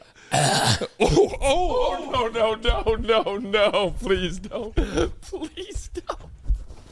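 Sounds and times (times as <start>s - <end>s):
person coughing: 0.3s - 1.4s
speech: 0.8s - 6.4s.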